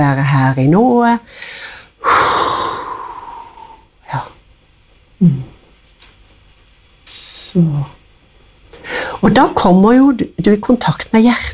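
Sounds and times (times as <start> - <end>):
speech: 0.0 - 2.5, 4.1 - 4.3, 5.2 - 5.5, 7.6 - 8.0, 9.2 - 11.5
single loud breath: 1.3 - 3.9, 8.8 - 9.2.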